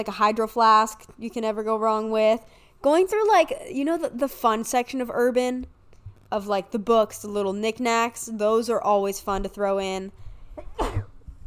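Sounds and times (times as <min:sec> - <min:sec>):
speech: 0:00.0 - 0:11.1
person sneezing: 0:10.6 - 0:11.2.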